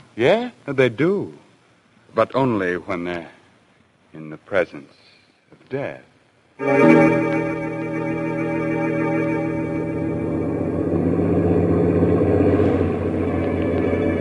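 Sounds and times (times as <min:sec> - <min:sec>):
speech: 0:00.2 - 0:01.4, 0:02.1 - 0:03.4, 0:04.1 - 0:05.0, 0:05.6 - 0:08.0
truck engine droning while driving through a foggy night: 0:06.8 - 0:14.2.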